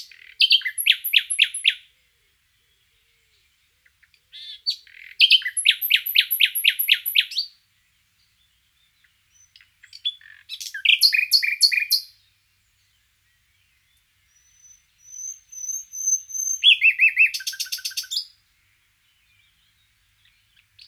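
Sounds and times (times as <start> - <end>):
common nightingale Luscinia megarhynchos singing: 0.0 - 20.8.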